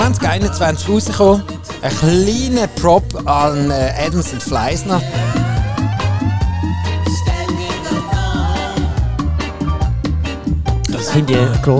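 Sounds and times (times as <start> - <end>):
loud pounding electronic beat with heavy bass: 0.0 - 11.7
speech: 0.1 - 5.5, 11.2 - 11.7
wailing siren tone sweeping up and down: 4.4 - 9.8.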